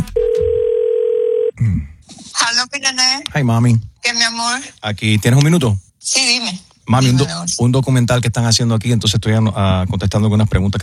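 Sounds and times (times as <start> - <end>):
telephone dial tone while a call is placed: 0.1 - 1.5
speech: 2.6 - 10.8.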